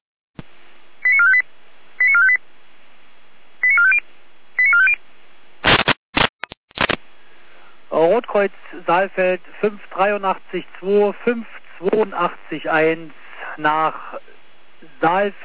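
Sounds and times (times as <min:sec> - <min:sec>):
radio alarm tone sequence alerting fire brigades: 0:01.0 - 0:02.4, 0:03.6 - 0:04.0, 0:04.6 - 0:05.0
steady radio hiss: 0:07.9 - 0:15.4
speech: 0:08.0 - 0:14.3, 0:15.0 - 0:15.4.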